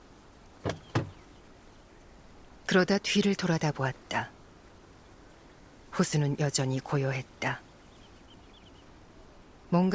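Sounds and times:
car driver's door opening on an unpaved road: 0.6 - 1.2
speech: 2.7 - 4.3, 6.0 - 7.6, 9.7 - 9.9.

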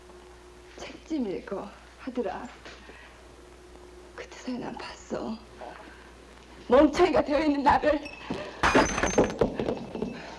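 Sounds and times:
speech: 1.1 - 2.9, 4.4 - 5.6, 6.7 - 8.2
drinking glass smashing: 8.6 - 9.4
glass shards tinkling as they settle: 8.6 - 9.4.

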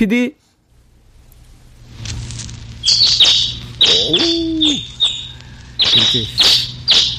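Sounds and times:
speech: 0.0 - 0.4, 3.8 - 5.0, 5.9 - 6.7
faint low hum: 0.0 - 7.1
sparrow chirping: 2.8 - 7.1.

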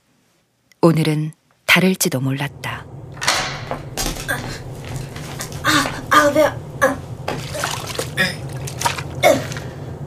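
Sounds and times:
speech: 0.8 - 2.8
steady low hum: 2.1 - 10.0
person relieving themselves in a toilet stall, trickle and splash of liquid: 7.3 - 9.8.

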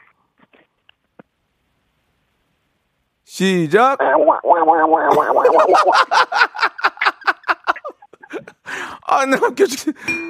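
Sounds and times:
speech: 3.3 - 6.5, 9.1 - 10.2
voice imitating a duck quacking: 4.0 - 5.6
laughter: 4.4 - 8.6.

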